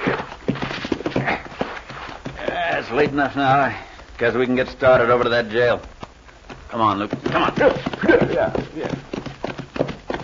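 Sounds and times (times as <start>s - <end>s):
horse snorting: 0.0s - 3.0s, 7.0s - 10.2s
horses clip-clopping at a walk: 0.0s - 10.2s
speech: 0.1s - 0.3s, 2.8s - 5.9s, 6.7s - 9.2s.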